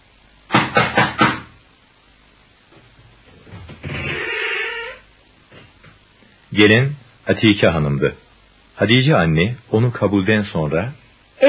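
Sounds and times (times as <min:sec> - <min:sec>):
firm knocking on a door: 0:00.5 - 0:01.6
door creaking: 0:03.3 - 0:05.8
speech: 0:06.6 - 0:11.4.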